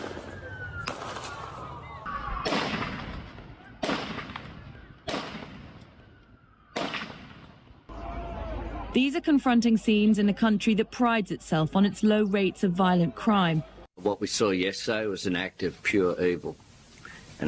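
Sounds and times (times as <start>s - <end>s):
gunshots from a weapon fired on a bridge: 2.4s - 5.8s, 6.8s - 7.6s
speech: 9.0s - 16.6s.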